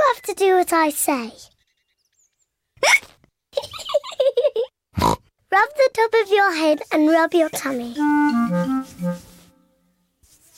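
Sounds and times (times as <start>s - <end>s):
speech: 0.2s - 1.5s, 5.0s - 9.3s
young child hiccuping: 2.8s - 3.1s.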